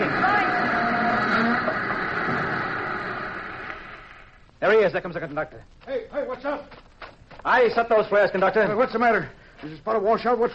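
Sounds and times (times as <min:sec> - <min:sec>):
faint squealing of a stopping train: 0:00.0 - 0:04.4
train grinding and rumbling to a stop: 0:00.0 - 0:04.4
speech: 0:04.8 - 0:06.8, 0:07.4 - 0:10.5.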